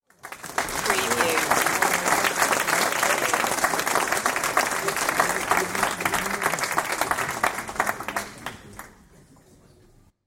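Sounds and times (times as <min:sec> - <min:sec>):
audience applause: 0:00.0 - 0:10.0
laughter: 0:00.6 - 0:09.9.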